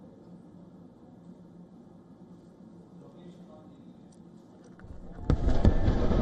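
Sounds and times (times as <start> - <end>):
fireworks at 4th of July celebration in Washington, D.C.: 5.0 - 6.2.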